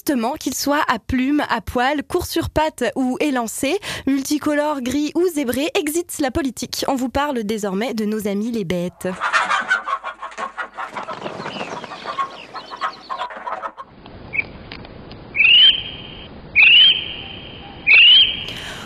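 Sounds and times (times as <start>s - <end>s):
speech: 0.0s - 9.7s
kiwi calling with shrill rising whistles: 8.9s - 14.6s, 15.3s - 18.7s
rustling: 9.1s - 15.2s.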